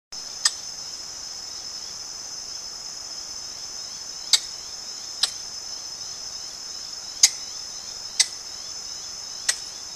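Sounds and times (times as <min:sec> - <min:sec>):
Funisciurus leucogenys red-cheeked rope squirrel calling: 0:00.3 - 0:01.0, 0:03.8 - 0:09.9.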